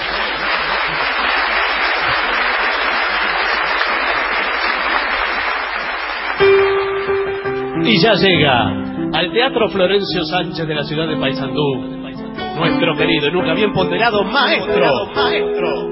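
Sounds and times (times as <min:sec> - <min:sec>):
theater audience applauding in a theater in Paysandú: 0:00.0 - 0:07.7
speech: 0:07.9 - 0:12.0, 0:12.6 - 0:15.8.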